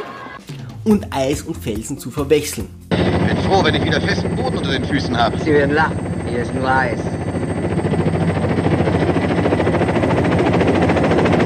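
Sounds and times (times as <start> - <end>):
speech: 0.8 - 7.2
helicopter rotor thumping over rocks and ice in snowy mountains: 2.7 - 11.4.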